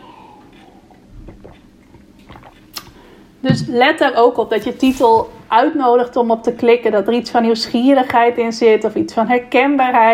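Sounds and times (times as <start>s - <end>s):
person sipping water with slurping and wet mouth noises: 0.2s - 3.0s
swallow: 0.4s - 3.0s
speech: 1.3s - 2.6s, 3.4s - 10.1s.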